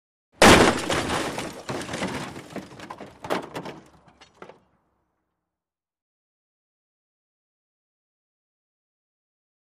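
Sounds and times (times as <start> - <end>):
vehicle dropped: 0.4 - 4.7.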